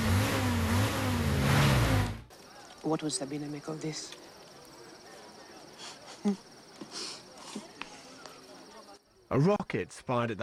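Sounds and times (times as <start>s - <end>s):
car engine accelerating as the vehicle drives off: 0.0s - 2.3s
speech: 2.8s - 4.3s, 6.2s - 7.0s, 9.3s - 10.4s.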